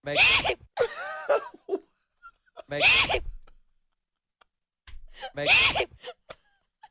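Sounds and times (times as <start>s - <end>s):
loud theatrical sneezes: 0.1s - 0.7s, 2.8s - 3.4s, 5.4s - 5.9s.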